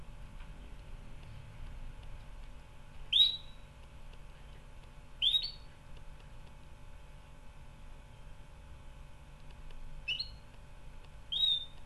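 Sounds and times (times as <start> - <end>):
canary calling: 3.1 - 3.7, 5.2 - 5.7, 10.0 - 10.5, 11.3 - 11.8.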